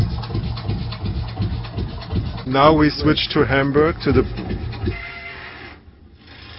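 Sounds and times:
low rumbling under bridge: 0:00.0 - 0:06.2
speech: 0:02.5 - 0:05.0
bridge in Hamburg squealing with metallic screech: 0:03.1 - 0:06.5.

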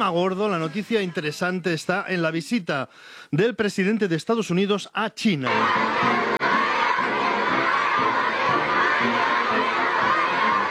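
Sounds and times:
speech: 0:00.0 - 0:06.3
crowd cheering at the US president's arrival in China: 0:05.5 - 0:10.6
excited high-pitched shouts: 0:05.5 - 0:10.6.

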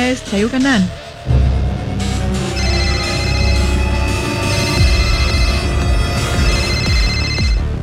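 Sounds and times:
speech: 0:00.1 - 0:01.5
telephone ringing with a tonal ringtone melody: 0:02.4 - 0:07.7.

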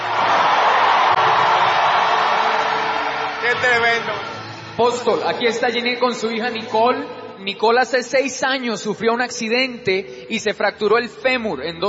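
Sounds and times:
large crowd shouting in victory: 0:00.0 - 0:04.5
large crowd applauding: 0:00.0 - 0:06.3
speech: 0:03.6 - 0:11.8.

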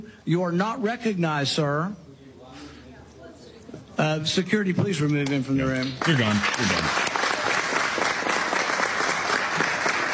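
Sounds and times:
speech: 0:00.2 - 0:02.0, 0:04.0 - 0:07.0
room full of people applauding: 0:05.7 - 0:10.1.

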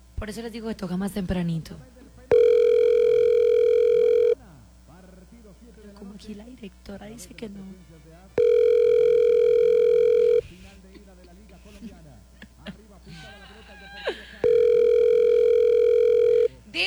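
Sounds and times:
speech: 0:00.2 - 0:02.0, 0:06.2 - 0:08.4
unanswered telephone ringing in long electronic tone bursts: 0:02.3 - 0:04.4, 0:08.4 - 0:10.4, 0:14.4 - 0:16.6
laughter: 0:11.7 - 0:14.5.

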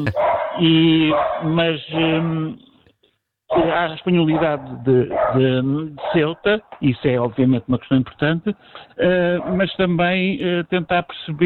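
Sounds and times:
dog barking with drawn-out tonal barks: 0:00.0 - 0:02.1, 0:05.1 - 0:05.4, 0:06.0 - 0:06.3
speech: 0:00.0 - 0:02.7, 0:03.5 - 0:11.4.

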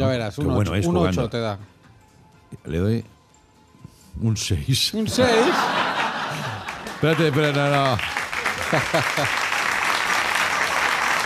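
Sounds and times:
speech: 0:00.1 - 0:01.8, 0:02.5 - 0:03.2, 0:04.2 - 0:05.8, 0:07.0 - 0:09.5
people shouting and laughing: 0:05.1 - 0:06.7
live audience applause: 0:05.3 - 0:11.2.

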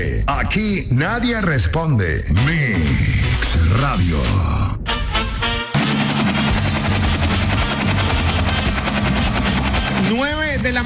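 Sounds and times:
speech: 0:00.0 - 0:04.8, 0:10.1 - 0:10.8
helicopter roaring overhead with rotor thumping: 0:05.5 - 0:10.8.

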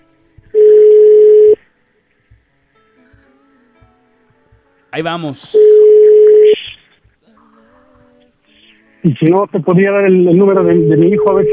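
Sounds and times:
telephone ringback tone while waiting for an answer: 0:00.6 - 0:01.6, 0:05.6 - 0:06.7
speech: 0:05.0 - 0:05.7, 0:09.0 - 0:11.5.

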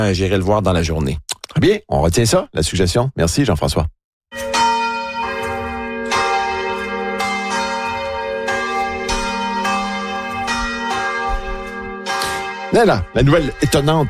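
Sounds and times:
speech: 0:00.0 - 0:04.6, 0:12.7 - 0:14.0
church bell ringing over a town at night: 0:04.3 - 0:14.0.

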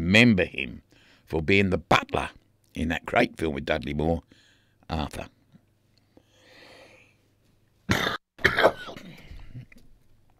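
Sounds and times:
speech: 0:00.1 - 0:05.4
faint breathy noise: 0:00.9 - 0:01.3, 0:04.3 - 0:04.8, 0:06.0 - 0:07.3
person coughing: 0:07.9 - 0:09.3.

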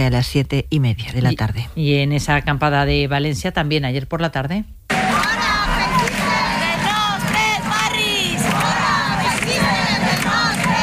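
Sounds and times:
speech: 0:00.0 - 0:04.8
crowd of anti-fascist protesters shouting and chanting at a protest camp: 0:04.9 - 0:10.8.

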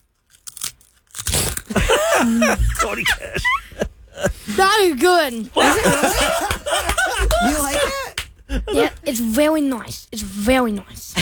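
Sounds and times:
loaded nachos crunched and chewed: 0:00.0 - 0:03.0
speech: 0:01.7 - 0:03.6, 0:04.2 - 0:11.2
laughter: 0:01.7 - 0:04.8, 0:05.5 - 0:09.0.

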